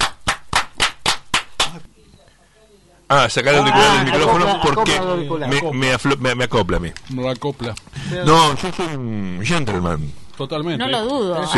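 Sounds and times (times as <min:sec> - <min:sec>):
hand claps in applause: 0:00.0 - 0:01.9
speech: 0:03.1 - 0:11.5.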